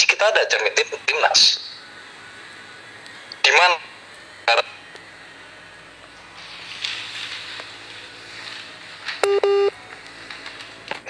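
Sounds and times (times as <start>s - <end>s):
speech: 0.2s - 1.7s, 3.5s - 3.9s, 4.5s - 4.7s
short electronic telephone dialing tones: 9.2s - 9.7s
long steady telephone beep: 9.2s - 9.8s.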